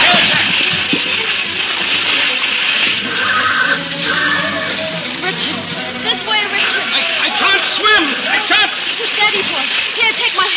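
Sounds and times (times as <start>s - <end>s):
river water splashing and churning during a river crossing: 0.0s - 10.5s
horse struck by an arrow whinnying in pain: 3.1s - 4.7s.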